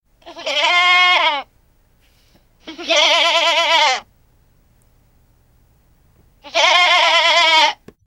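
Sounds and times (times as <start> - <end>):
goat-like bleating: 0.2 - 1.5, 2.6 - 4.1, 6.4 - 7.8.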